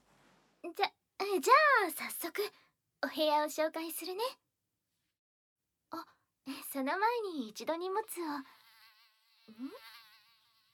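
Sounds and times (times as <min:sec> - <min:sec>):
speech: 0:00.6 - 0:04.4, 0:05.9 - 0:08.6, 0:09.5 - 0:09.9
fly buzzing with a whining drone: 0:08.0 - 0:10.7.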